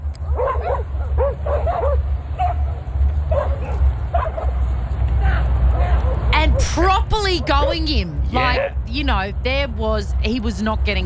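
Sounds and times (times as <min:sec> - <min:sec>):
constant outdoor noise: 0:00.0 - 0:11.0
several dogs barking and yipping while chasing a man: 0:00.1 - 0:07.6
man shouting: 0:05.2 - 0:08.9
speech: 0:07.3 - 0:11.0.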